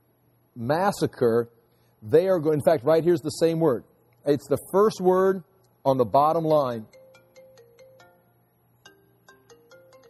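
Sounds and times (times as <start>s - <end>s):
speech: 0.6s - 7.0s
mobile phone ringtone playing a short electronic melody: 6.9s - 10.0s.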